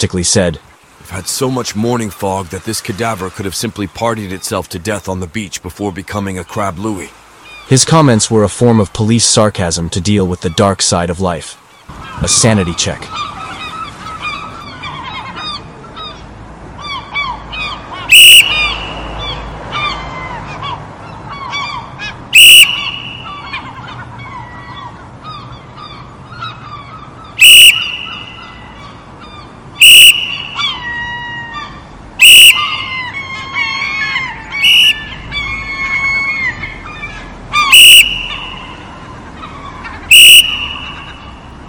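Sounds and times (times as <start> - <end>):
speech: 0.0 - 13.3
gulls squawking and honking: 0.0 - 41.6
loud sharp whistle blasts: 18.1 - 19.1, 22.4 - 23.4, 27.4 - 28.3, 29.8 - 30.6, 32.2 - 32.7, 34.6 - 35.1, 37.7 - 38.8, 40.1 - 41.2.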